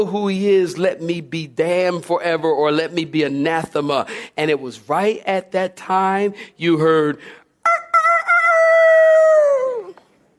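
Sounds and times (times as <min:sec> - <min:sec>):
speech: 0:00.0 - 0:07.8
person imitating a rooster crowing: 0:07.7 - 0:10.0.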